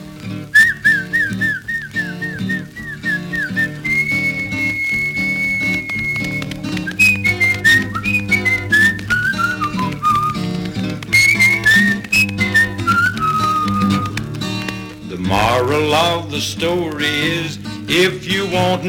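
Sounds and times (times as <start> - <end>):
person whistling to call a dog: 0.5 - 14.4
speech: 16.0 - 18.8.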